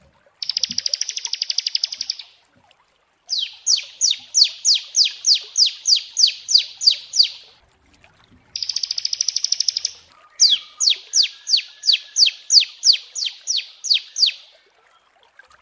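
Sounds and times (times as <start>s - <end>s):
prinia singing: 0.4s - 2.4s, 3.3s - 7.6s, 8.6s - 14.6s.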